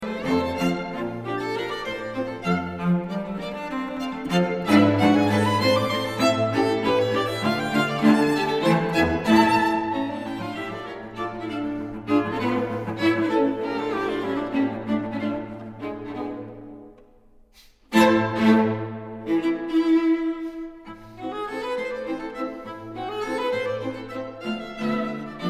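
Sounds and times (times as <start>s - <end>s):
string quartet playing: 0.0s - 25.4s.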